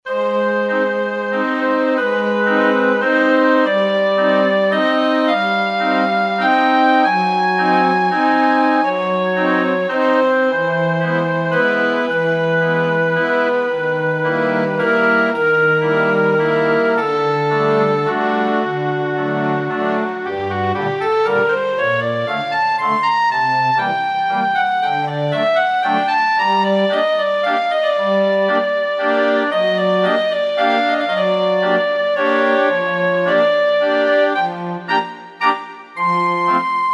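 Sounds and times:
flute: 0.1s - 36.9s
oboe: 0.1s - 36.9s
strings: 0.1s - 36.9s.

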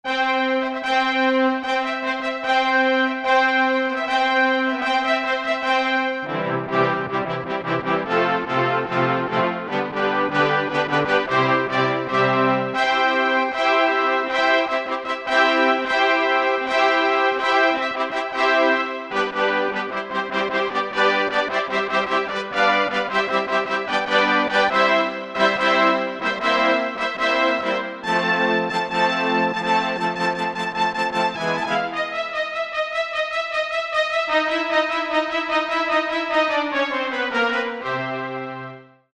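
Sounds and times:
orchestral fanfare on a Korg MSC-4S Orchestra synthesizer: 0.1s - 38.9s.

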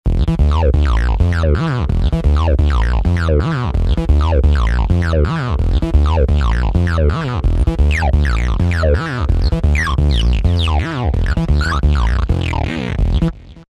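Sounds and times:
distorted saw bass synthesizer patch: 0.1s - 13.6s.

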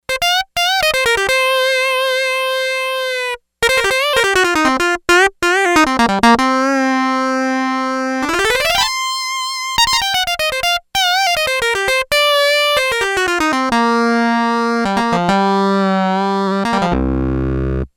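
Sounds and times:
synthesizer solo on a factory preset voice: 0.1s - 4.8s, 5.4s - 17.9s.

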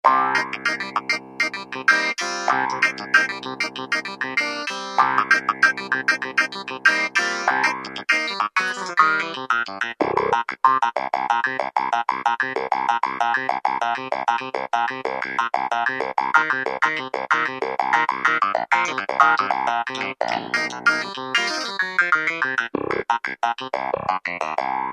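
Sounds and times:
wah clavinet sound on Kurzweil K2000 keyboard: 0.0s - 24.9s.

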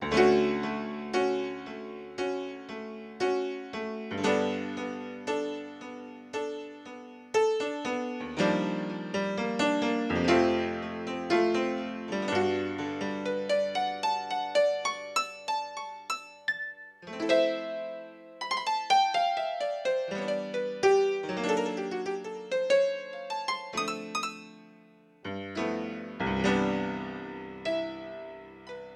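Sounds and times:
Yamaha CFIII grand piano playing on Yamaha TX16W sampler: 0.0s - 28.9s.

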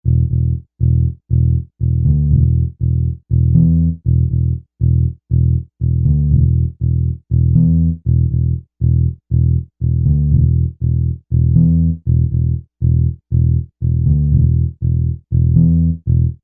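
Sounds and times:
finger bass pattern: 0.0s - 16.4s.

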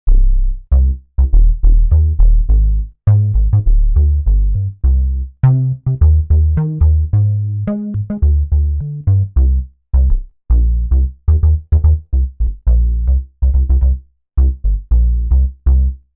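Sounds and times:
analog synth bass factory patches: 0.1s - 16.1s.

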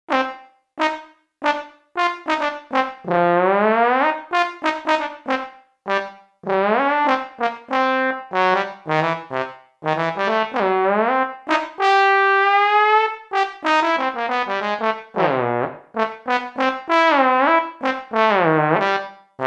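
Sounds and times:
trombone patch on a Roland JV-880 synthesizer: 0.1s - 19.4s.

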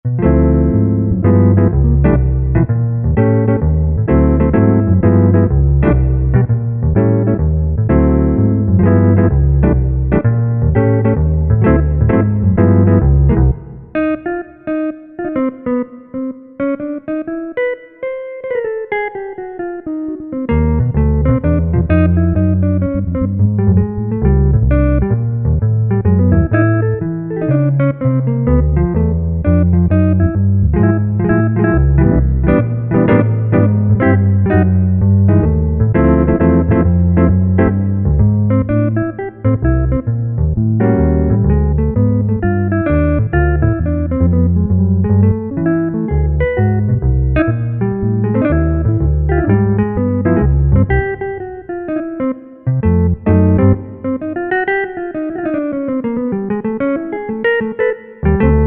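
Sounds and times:
jazz guitar through Korg rack unit: 0.0s - 58.6s.

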